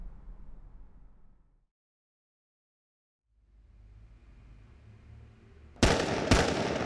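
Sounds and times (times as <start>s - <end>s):
gunshots from a handgun fired at a target: 5.8s - 6.8s.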